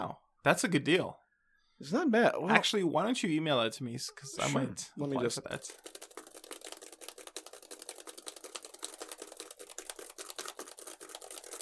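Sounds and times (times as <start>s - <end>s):
speech: 0.0s - 1.2s, 1.8s - 6.1s
fingers typing on a computer keyboard: 5.6s - 11.6s.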